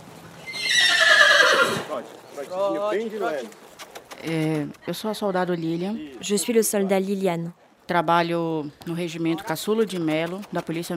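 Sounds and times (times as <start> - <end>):
mounted police horse whinnying in Belém: 0.4 - 1.9
speech: 2.0 - 3.6, 4.2 - 10.9.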